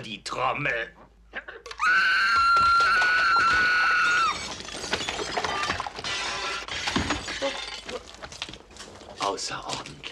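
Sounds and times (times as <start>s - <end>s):
speech: 0.0s - 2.6s, 9.4s - 10.1s
piercing sustained high-pitched scream: 1.8s - 4.4s
glass shattering with crashing and tinkling shards: 3.4s - 8.6s.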